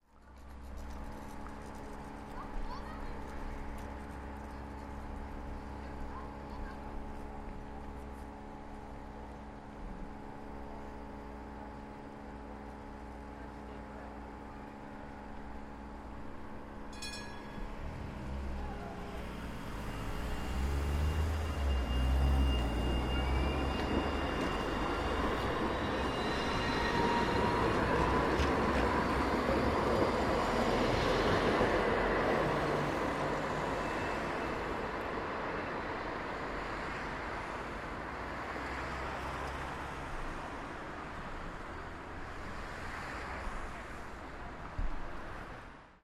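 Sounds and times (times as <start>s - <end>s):
tram station ambience: 0.0s - 46.0s.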